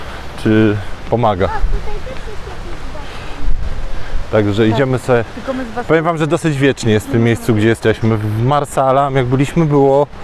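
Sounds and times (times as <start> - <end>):
wind buffeting a microphone with a furry windshield: 0.2 - 10.2
speech: 0.4 - 2.4, 4.3 - 10.2
faint voices murmuring: 0.8 - 8.6.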